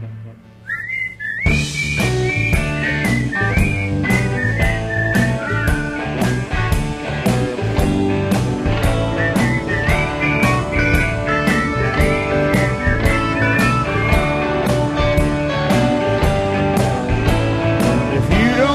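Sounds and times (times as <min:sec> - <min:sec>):
person whistling a tune: 0:00.6 - 0:06.7, 0:08.9 - 0:14.5
backing track with beat: 0:01.1 - 0:18.7.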